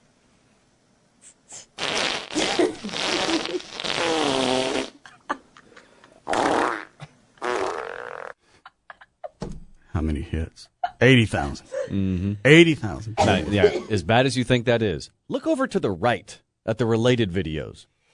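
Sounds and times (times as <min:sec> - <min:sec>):
fart sound effects: 0:01.6 - 0:05.0, 0:06.3 - 0:08.4
speech: 0:10.3 - 0:17.9.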